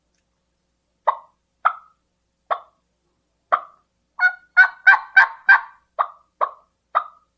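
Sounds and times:
turkey clucking: 1.0 - 2.8, 3.5 - 7.3.

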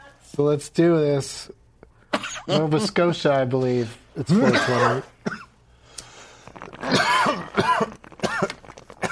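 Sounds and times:
speech: 0.4 - 1.6, 2.5 - 5.4
harsh raspy coughs: 2.1 - 2.9, 4.3 - 5.5, 6.8 - 9.1.

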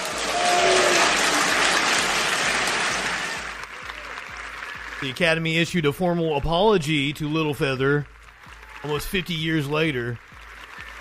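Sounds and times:
large audience booing: 0.0 - 4.3
audience clapping: 0.0 - 10.9
crowd noise: 0.0 - 10.9
speech: 5.0 - 8.1, 8.8 - 10.3.

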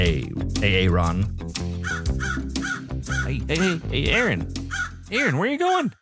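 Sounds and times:
speech: 0.0 - 1.4, 3.3 - 6.0
crows cawing: 1.8 - 3.5, 4.6 - 5.1.

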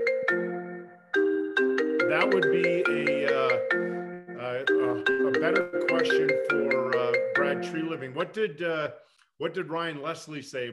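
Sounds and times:
phone ringtone for an incoming call: 0.0 - 8.0
speech: 2.1 - 3.8, 4.6 - 10.7.

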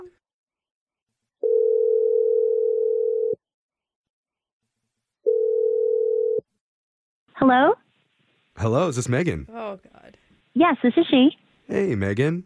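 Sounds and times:
telephone line tone while a number is dialed: 1.4 - 3.4, 5.3 - 6.5
speech: 7.5 - 7.8, 8.6 - 12.4.

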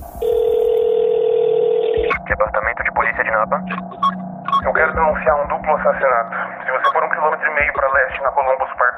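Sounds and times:
faint low rumble on a telephone line: 0.0 - 8.9
loud steady telephone dial tone: 0.2 - 2.1
speech: 3.3 - 8.7.

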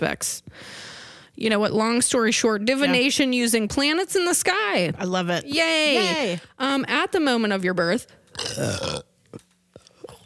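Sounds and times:
speech: 0.0 - 9.4
mouth and throat noises: 8.3 - 10.2
loud rumbling burp: 8.4 - 9.2.

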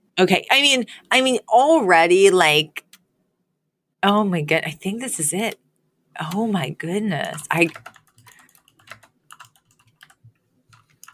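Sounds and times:
speech: 0.2 - 2.8, 4.0 - 5.6, 6.2 - 8.0
rapid typing on a computer keyboard: 7.3 - 11.1.

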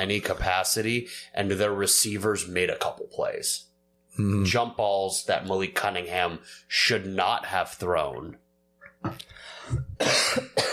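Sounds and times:
speech: 0.0 - 8.4, 9.0 - 10.7
harsh forceful coughs: 9.8 - 10.7.

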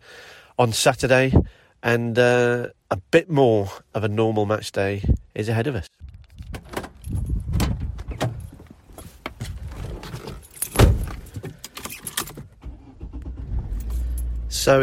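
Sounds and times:
speech: 0.6 - 6.0
keys jangling: 6.2 - 7.5, 10.2 - 12.4, 13.7 - 14.4
shuffling inside a car cabin: 6.9 - 14.8
car door slamming shut: 10.7 - 11.2.

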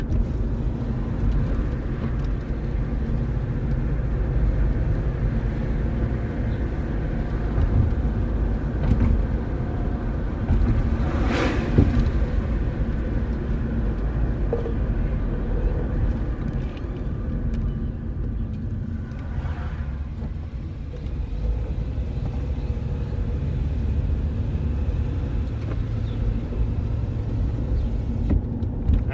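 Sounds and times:
car driving with road noise and engine hum: 0.0 - 29.1
vehicle passing whoosh: 9.7 - 13.4, 18.8 - 20.8.

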